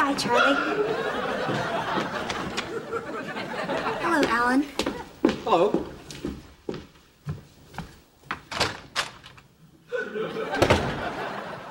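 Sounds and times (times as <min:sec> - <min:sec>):
speech: 0:00.1 - 0:01.8, 0:05.5 - 0:05.9
laughter: 0:00.4 - 0:04.3, 0:09.9 - 0:11.6
front door opening and closing: 0:08.2 - 0:09.6, 0:10.4 - 0:11.4.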